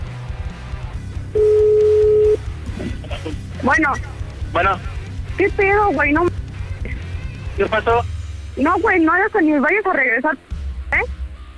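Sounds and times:
telephone ringback tone: 1.4s - 2.4s
speech: 3.6s - 6.4s, 7.6s - 10.5s.

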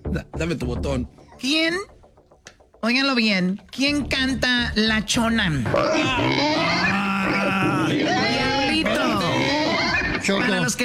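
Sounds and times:
speech: 0.1s - 1.9s, 2.8s - 8.5s, 10.2s - 10.8s
pig grunting sound effect used as a quiz contestant's buzzer: 5.6s - 10.5s.

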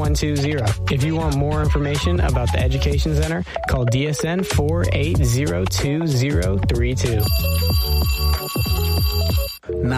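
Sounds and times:
speech: 0.0s - 9.9s
electronic telephone ringing on a call to emergency services: 7.2s - 9.8s.

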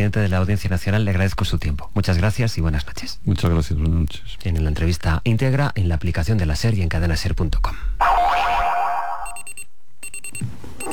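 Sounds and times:
speech: 0.0s - 8.6s
springy descending boing: 8.0s - 9.3s.

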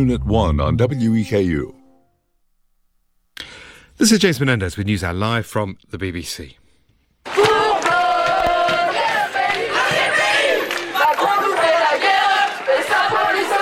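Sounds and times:
speech: 0.0s - 1.8s, 4.0s - 6.6s
large crowd of protesting students chanting and shouting in unison in France: 7.2s - 13.6s.

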